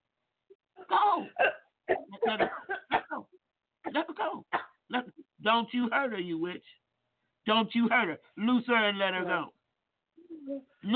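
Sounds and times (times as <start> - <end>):
person coughing: 1.2 - 3.3
speech: 5.5 - 6.8, 7.4 - 9.6, 10.5 - 10.9.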